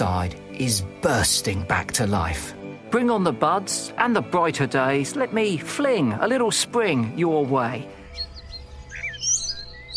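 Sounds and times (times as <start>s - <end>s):
speech: 0.0s - 8.0s
blackbird singing: 7.9s - 9.9s.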